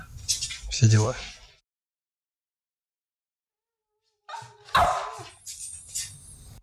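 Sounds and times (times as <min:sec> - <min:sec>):
speech: 0:00.8 - 0:01.3
dog barking and yipping: 0:04.3 - 0:05.5.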